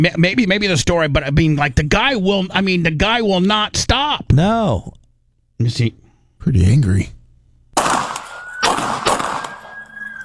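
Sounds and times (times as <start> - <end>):
speech: 0.0 - 5.0, 5.6 - 7.2
pistol gunshots: 7.8 - 10.2
steady high tone: 9.3 - 10.2.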